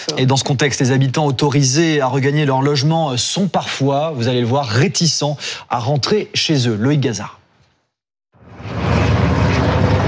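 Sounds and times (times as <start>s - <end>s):
speech: 0.1s - 7.4s
water-bombing firefighting helicopters flying over a wildfire-hit village: 8.7s - 10.0s.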